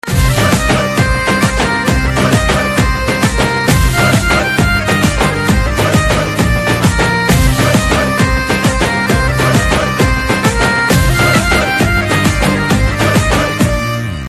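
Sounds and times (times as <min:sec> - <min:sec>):
instrumental ringtone: 0:00.0 - 0:14.2.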